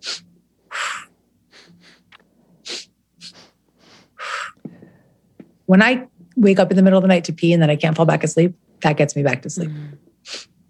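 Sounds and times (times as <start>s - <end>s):
longer forceful exhale in breath-work exercise: 0.0s - 1.1s, 2.6s - 5.0s
two quick sniffing inhales in breath-work exercise: 0.0s - 5.2s, 9.8s - 10.6s
speech: 5.7s - 10.5s.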